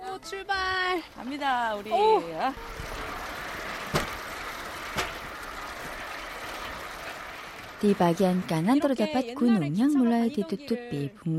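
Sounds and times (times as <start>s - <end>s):
rail bike wheels rolling on railway tracks along a river in spring: 0.0s - 10.0s
speech: 0.2s - 2.9s, 7.8s - 11.3s
sharp clacks of rail joints under a rail bike: 0.7s - 8.2s.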